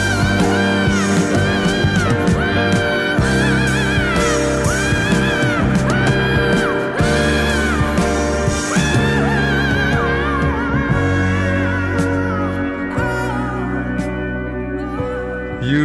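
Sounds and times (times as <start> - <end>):
full loud band playing: 0.0 - 15.8
woman's high wordless screaming vocal in a 1973 recording: 0.2 - 13.9.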